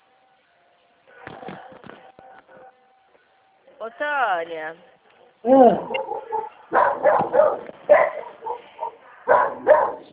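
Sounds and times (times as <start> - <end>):
speech: 3.8 - 7.7
dog barking and whimpering: 5.4 - 10.1.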